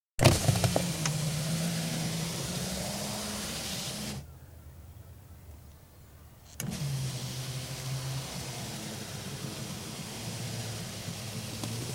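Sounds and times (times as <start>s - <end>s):
car interior electric window opening and closing: 0.2s - 4.2s, 6.5s - 11.9s.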